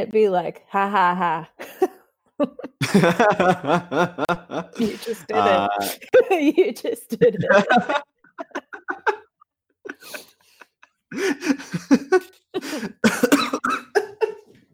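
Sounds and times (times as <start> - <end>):
speech: 0.0 - 8.5, 11.1 - 13.3
laughter: 1.6 - 14.5
person in a coughing fit: 4.8 - 6.1, 11.4 - 14.4
strained breaths: 9.9 - 13.1.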